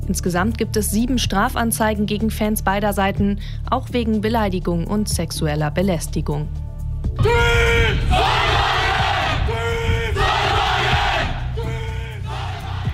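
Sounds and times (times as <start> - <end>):
speech: 0.1 - 6.6
university students from a solar-car racing team shouting their battle cry in unison: 7.9 - 12.9.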